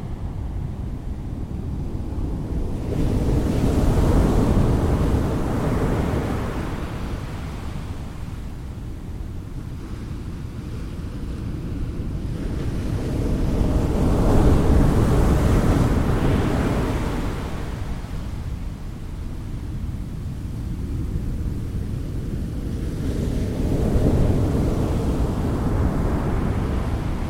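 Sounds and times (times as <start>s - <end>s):
gentle ocean waves: 0.0s - 27.2s.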